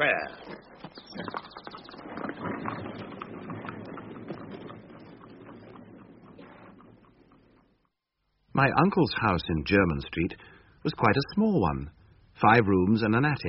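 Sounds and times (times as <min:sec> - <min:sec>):
speech: 0:00.0 - 0:00.7, 0:08.6 - 0:13.4
horse hooves clip-clopping on a hard road: 0:00.3 - 0:07.9
horse-drawn carriage wheels rumbling: 0:00.6 - 0:07.9.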